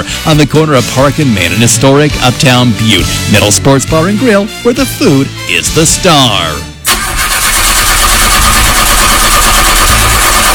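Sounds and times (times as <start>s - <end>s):
speech: 0.0s - 6.7s
car engine struggling to start: 6.8s - 10.5s.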